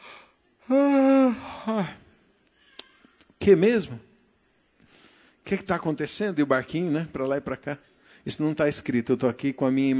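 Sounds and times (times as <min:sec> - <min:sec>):
person sighing: 0:00.0 - 0:03.0
person voicing an exaggerated drawn-out acted yawn: 0:00.6 - 0:02.1
speech: 0:03.4 - 0:04.1, 0:05.5 - 0:09.9.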